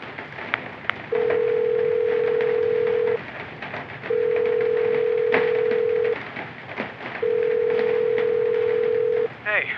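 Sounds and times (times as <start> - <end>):
outgoing phone call ringback tone: 1.1 - 3.2, 4.1 - 6.2, 7.2 - 9.3.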